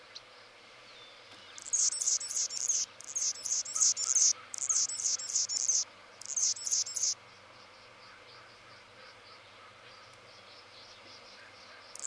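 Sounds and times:
faint background hiss: 0:00.0 - 0:12.0
Anna's hummingbird song: 0:01.0 - 0:07.2, 0:10.4 - 0:12.0.

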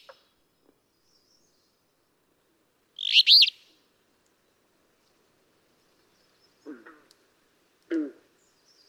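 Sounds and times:
alder flycatcher singing: 0:03.0 - 0:03.6.

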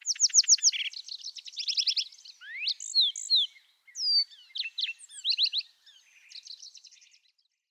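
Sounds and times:
lark sparrow song with high trills and buzzy phrases: 0:00.0 - 0:07.7.

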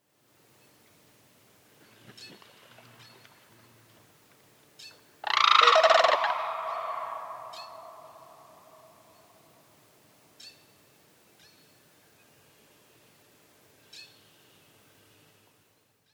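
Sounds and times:
Sandhill crane calling: 0:05.2 - 0:09.2.

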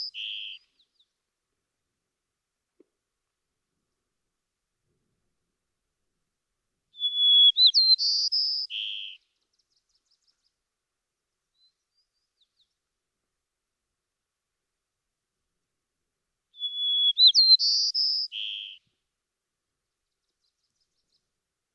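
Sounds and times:
white-crowned sparrow song of whistles and descending buzzes: 0:07.0 - 0:09.2, 0:16.6 - 0:18.8.

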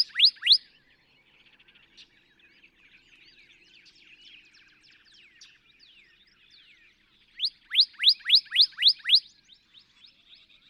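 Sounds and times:
northern cardinal whistled song: 0:00.0 - 0:00.6, 0:07.4 - 0:09.4.

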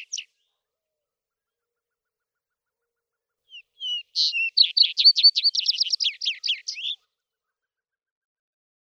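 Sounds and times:
vesper sparrow singing: 0:00.0 - 0:00.3, 0:03.5 - 0:07.0.

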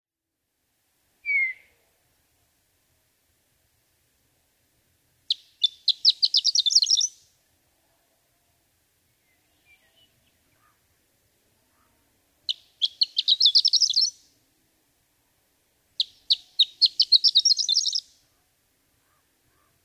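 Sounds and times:
Horned Lark: 0:01.3 - 0:01.7, 0:05.3 - 0:07.2, 0:09.6 - 0:10.9, 0:11.7 - 0:14.3, 0:16.0 - 0:18.4, 0:19.0 - 0:19.8.

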